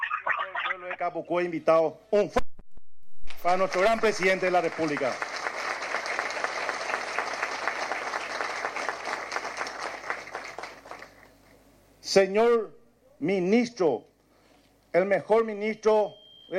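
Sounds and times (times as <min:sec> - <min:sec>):
speech: 0:00.7 - 0:02.5, 0:03.4 - 0:05.4, 0:12.1 - 0:14.1, 0:14.9 - 0:16.5
crowd giving loud sustained applause: 0:03.5 - 0:11.4.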